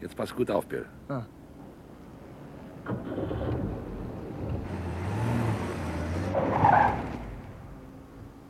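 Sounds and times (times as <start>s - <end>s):
speech: 0.1s - 1.4s
car engine roaring as the vehicle swerves: 1.9s - 8.4s
tire screech: 2.9s - 7.6s.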